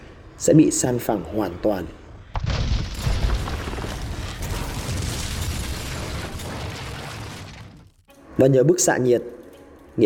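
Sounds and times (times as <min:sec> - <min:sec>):
speech: 0:00.4 - 0:02.0, 0:08.4 - 0:09.4
pressure wave of a nuclear warhead explosion booming and rumbling: 0:02.4 - 0:08.0.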